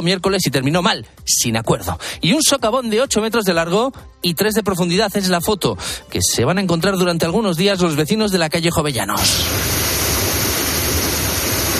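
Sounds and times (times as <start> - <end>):
speech: 0.0 - 10.0
water gushing from a burst pipe: 9.2 - 11.7.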